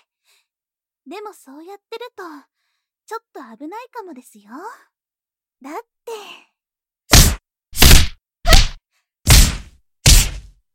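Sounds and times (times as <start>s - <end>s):
speech: 1.0s - 4.9s, 5.6s - 6.5s
punches landing on an unguarded person: 7.1s - 10.5s.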